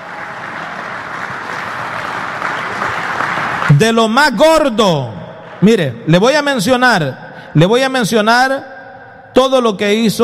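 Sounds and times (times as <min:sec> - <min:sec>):
audience applauding: 0:00.0 - 0:04.2
speech: 0:03.8 - 0:08.7, 0:09.4 - 0:10.2.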